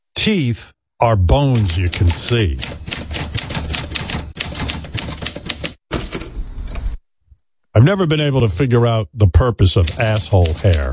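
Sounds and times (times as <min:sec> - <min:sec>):
speech: 0:00.2 - 0:02.9, 0:07.8 - 0:10.9
rapid dense typewriter keystrokes: 0:01.5 - 0:06.0, 0:09.7 - 0:10.9.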